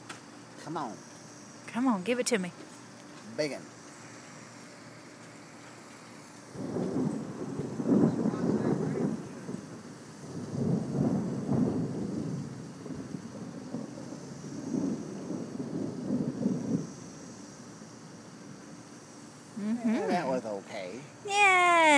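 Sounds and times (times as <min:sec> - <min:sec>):
faint steady hiss of rain: 0:00.0 - 0:21.9
speech: 0:00.6 - 0:01.1, 0:01.7 - 0:02.7, 0:03.3 - 0:03.8
rolling thunder from a storm: 0:06.5 - 0:17.0.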